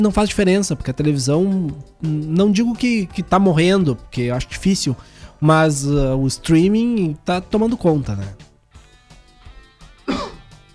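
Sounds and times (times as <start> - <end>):
speech: 0.0 - 8.4
person clearing throat: 10.0 - 10.6.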